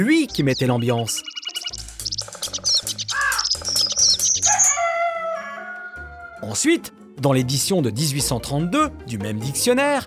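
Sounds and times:
speech: 0.0 - 1.4, 6.4 - 10.0
several birds chirping and warbling in a chorus: 0.0 - 6.4
bird whistled phrase: 0.5 - 5.0.

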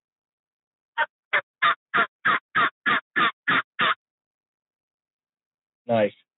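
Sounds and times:
turkey mouth call sounding a simple cluck: 1.0 - 4.0
speech: 5.9 - 6.2.

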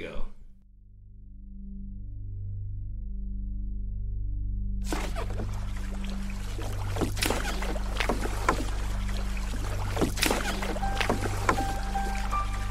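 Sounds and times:
boat engine drone in the Everglades: 1.6 - 12.6
rushing water: 4.9 - 12.6.

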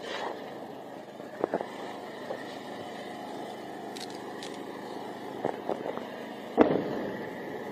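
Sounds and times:
steady outdoor rumble near the border: 0.0 - 7.6
explosions from interceptions of rockets fired from the Gaza Strip: 6.6 - 7.4.

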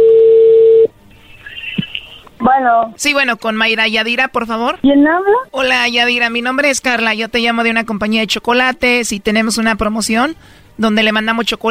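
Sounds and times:
steady single-pitched telephone tone: 0.0 - 0.9
speech: 2.6 - 11.6.

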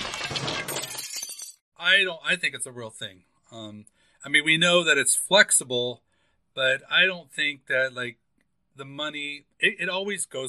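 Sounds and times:
glass shards tinkling: 0.0 - 1.6
glass smashing: 0.0 - 1.6
speech: 1.8 - 6.0, 6.6 - 8.2, 8.8 - 10.4.

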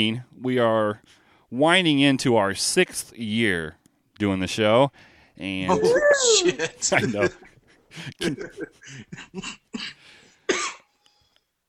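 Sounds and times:
speech: 0.0 - 10.0
laughter: 5.7 - 9.6
person coughing: 8.2 - 10.9.

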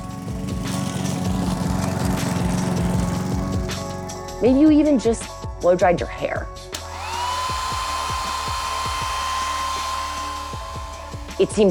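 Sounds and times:
lawn mower engine running: 0.0 - 4.4, 6.8 - 11.6
speech: 4.4 - 6.8, 11.4 - 11.6.

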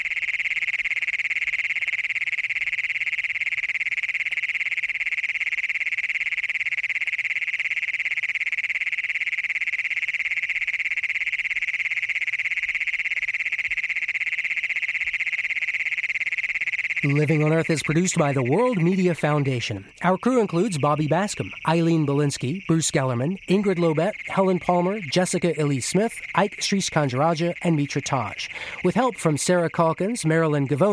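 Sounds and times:
adult male frog or toad trilling advertisement call near Wilcox Colorado: 0.0 - 30.9
speech: 17.0 - 30.9.

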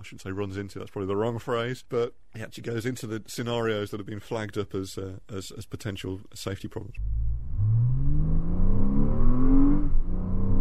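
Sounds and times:
speech: 0.0 - 7.9
computer-simulated sports car engine sound for electric vehicles revving: 7.0 - 10.6.

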